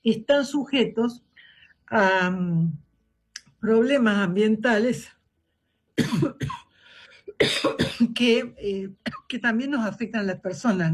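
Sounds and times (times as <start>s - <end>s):
speech: 0.0s - 1.3s, 1.9s - 2.8s, 3.6s - 5.2s, 6.0s - 6.6s, 7.4s - 10.9s
allergy-triggered harsh throaty coughs: 6.0s - 8.3s, 9.0s - 9.4s.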